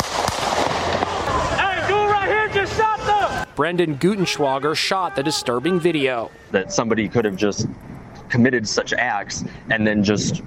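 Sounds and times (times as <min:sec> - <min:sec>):
rifle gunshots during a street protest: 0:00.0 - 0:01.3
raised voices shouting during a street protest: 0:00.7 - 0:06.9
speech: 0:03.6 - 0:10.4.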